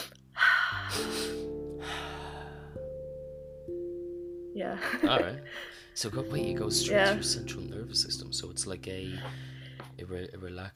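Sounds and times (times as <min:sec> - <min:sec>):
two quick inhales and one long exhale in a breathing exercise: 0:00.0 - 0:03.1, 0:05.4 - 0:06.0, 0:09.1 - 0:10.0
quiet sustained musical drone: 0:00.0 - 0:10.6
speech: 0:04.6 - 0:10.7.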